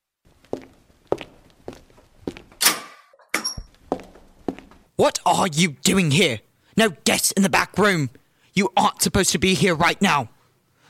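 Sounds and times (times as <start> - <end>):
footsteps of a woman walking into a back room: 0.3 - 2.7, 3.5 - 5.0
speech: 5.0 - 10.4.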